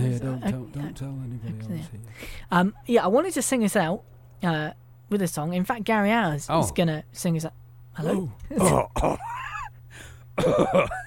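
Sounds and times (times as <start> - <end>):
low steady hum: 0.0 - 11.0
speech: 1.0 - 9.4, 10.0 - 11.0
person clearing throat: 8.5 - 9.2, 10.4 - 11.0
person coughing: 8.5 - 9.3, 10.4 - 11.0.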